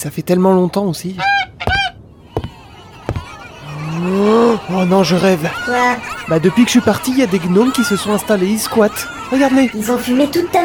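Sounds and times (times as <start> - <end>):
speech: 0.0 - 1.5, 4.0 - 10.6
single loud nasal goose honk: 1.2 - 10.6
sharp knocking thuds: 1.6 - 3.5
laughter: 2.2 - 10.6.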